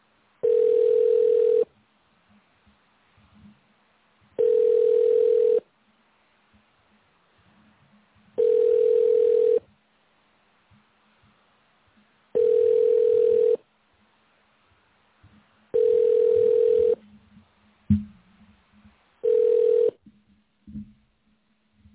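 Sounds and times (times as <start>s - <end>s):
telephone ringback tone on an unanswered call: 0.4s - 1.7s, 4.4s - 5.6s, 8.4s - 9.6s, 12.4s - 13.6s, 15.8s - 17.0s, 19.2s - 20.0s.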